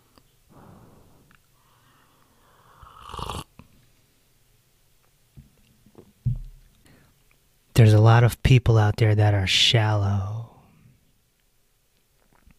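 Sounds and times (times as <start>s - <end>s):
person slurping a sip of tea: 2.5s - 3.5s
speech: 7.8s - 10.4s.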